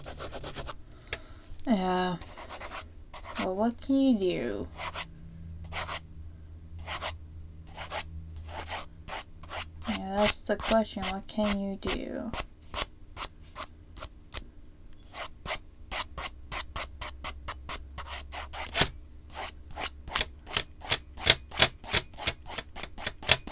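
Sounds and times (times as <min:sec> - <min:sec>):
pen or pencil drawing on paper: 0:00.0 - 0:00.8, 0:02.2 - 0:03.6, 0:04.7 - 0:05.1, 0:05.7 - 0:06.0, 0:06.8 - 0:11.6, 0:15.1 - 0:23.5
speech: 0:01.6 - 0:02.3, 0:03.4 - 0:04.8, 0:10.2 - 0:12.5.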